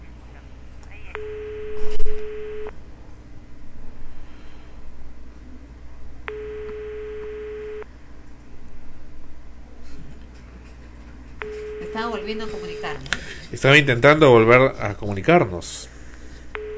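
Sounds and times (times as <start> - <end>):
low hum: 0.0 - 16.7
telephone ringback tones on a phone line: 1.2 - 2.7, 6.3 - 7.8, 11.4 - 13.0, 16.6 - 16.7
speech: 12.0 - 16.0.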